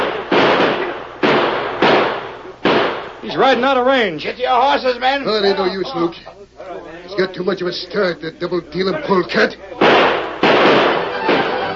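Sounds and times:
gunshots fired at a fleeing rider: 0:00.0 - 0:03.2, 0:09.8 - 0:11.7
speech: 0:03.3 - 0:10.1.

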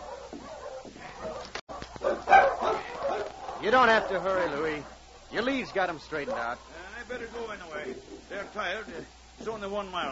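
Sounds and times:
sled dogs barking and snarling: 0:00.0 - 0:09.2
speech: 0:03.6 - 0:10.1.

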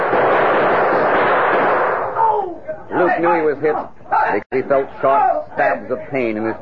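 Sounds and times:
gunshots in a night-time shootout on a dark street outside a bank: 0:00.0 - 0:02.4
speech: 0:03.2 - 0:06.6.

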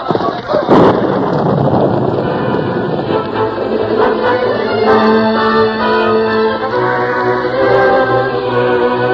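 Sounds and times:
sharp crack of thunder: 0:00.0 - 0:05.4
rolling, rumbling thunder: 0:00.0 - 0:06.4
rain-like hiss: 0:00.7 - 0:07.3
loud dramatic orchestral music: 0:02.1 - 0:09.1.

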